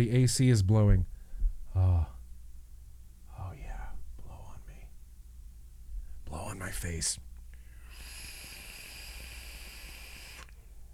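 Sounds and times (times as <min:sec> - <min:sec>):
speech: 0:00.0 - 0:01.1, 0:01.8 - 0:02.1, 0:06.6 - 0:07.3
airy hiss of a vape draw: 0:07.8 - 0:10.6.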